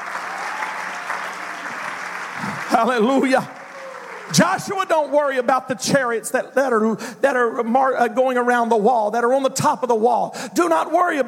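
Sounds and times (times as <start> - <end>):
congregation clapping hands at a church sermon: 0.0 - 5.4
speech: 2.7 - 3.6, 4.3 - 11.2.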